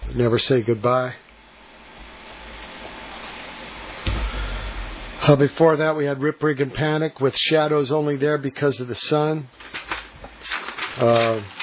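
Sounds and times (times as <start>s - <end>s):
speech: 0.1s - 1.2s, 5.3s - 9.8s, 11.0s - 11.6s
sheet of paper set list rustling and flipping over: 9.6s - 11.6s.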